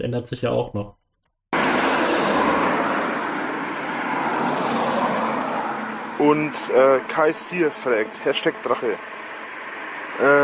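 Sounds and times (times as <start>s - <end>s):
speech: 0.0s - 1.0s, 6.2s - 9.2s, 10.2s - 10.4s
cars passing on a country road: 1.6s - 10.4s.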